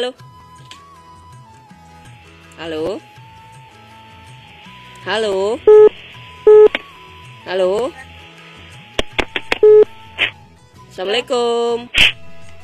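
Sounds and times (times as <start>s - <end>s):
speech: 0.0s - 0.3s, 2.6s - 3.1s, 5.0s - 6.6s, 7.4s - 8.1s, 11.0s - 12.2s
mobile phone keypad tones dialing a number for a cellular call: 5.7s - 6.8s, 9.6s - 9.9s.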